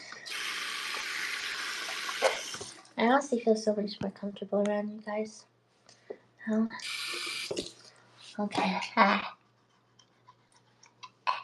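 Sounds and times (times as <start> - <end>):
bathroom sink tap water running: 0.0 - 3.1, 6.8 - 7.9
spitting splash into a bathroom sink: 0.3 - 2.8
speech: 3.0 - 5.5, 6.4 - 7.0, 8.4 - 9.4.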